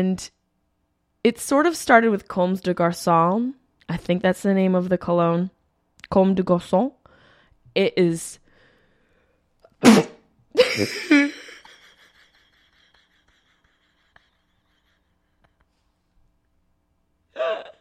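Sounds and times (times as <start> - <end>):
speech: 0.0 - 0.4, 1.2 - 7.0, 7.7 - 8.4, 9.8 - 10.1, 10.8 - 11.3
person sneezing from an allergic reaction to a cologne: 9.8 - 11.0.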